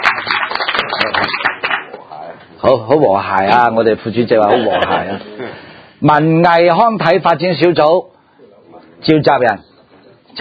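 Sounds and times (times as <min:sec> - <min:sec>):
group applause at a meeting approving a nomination: 0:00.0 - 0:02.0
speech: 0:02.6 - 0:08.1, 0:09.0 - 0:09.7
laughter: 0:04.4 - 0:05.6.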